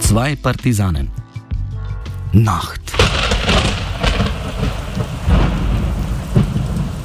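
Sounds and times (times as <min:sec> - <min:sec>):
speech: 0:00.1 - 0:01.2, 0:02.3 - 0:02.9
low thunder rumbling: 0:02.9 - 0:07.0
steady heavy rain at night: 0:02.9 - 0:07.0.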